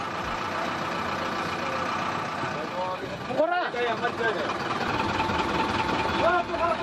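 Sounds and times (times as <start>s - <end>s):
bus engine idling in Kathmandu before departure: 0.0s - 6.8s.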